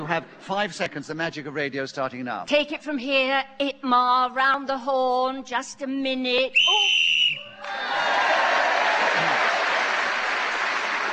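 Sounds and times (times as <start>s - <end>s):
speech: 0.1s - 8.1s
short shrill whistle blast ending a round of a game: 6.5s - 7.6s
loud audience applause: 7.6s - 11.1s.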